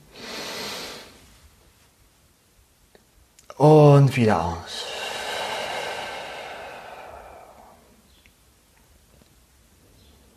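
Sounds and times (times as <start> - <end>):
deep airy inhale: 0.0 - 1.2, 4.7 - 8.1
speech: 3.6 - 4.9.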